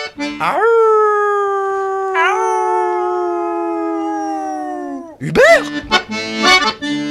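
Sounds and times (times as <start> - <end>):
speech: 0.4 - 0.8, 5.2 - 7.0
small dog howling in a city: 0.4 - 5.2.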